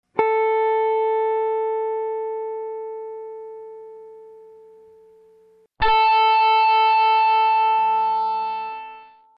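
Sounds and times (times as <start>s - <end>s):
guitar note with low-pass square wave: 0.2s - 9.3s
low-pass square wave tone: 3.0s - 9.3s.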